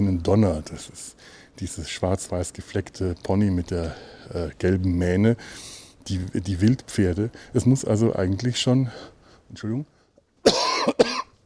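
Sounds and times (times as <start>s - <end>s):
speech: 0.0s - 11.2s
person coughing from lingering chest congestion: 10.4s - 11.4s.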